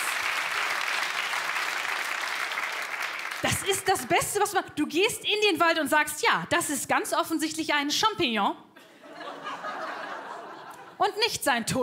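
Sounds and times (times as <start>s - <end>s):
audience applause: 0.0s - 3.7s
speech: 3.4s - 8.7s, 11.0s - 11.8s
laughter: 8.8s - 11.0s.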